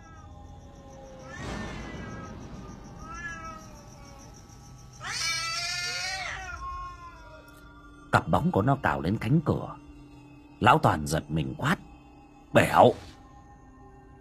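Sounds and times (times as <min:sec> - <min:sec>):
cat yowling aggressively: 0:03.0 - 0:04.2, 0:05.0 - 0:07.6
speech: 0:08.2 - 0:09.8, 0:10.6 - 0:11.9, 0:12.5 - 0:13.1.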